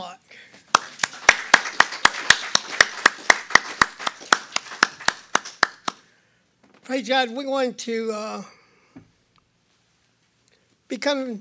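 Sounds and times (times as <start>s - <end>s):
steady rhythmic hand clapping in unison: 0.7s - 6.0s
speech: 6.9s - 8.6s, 10.9s - 11.3s.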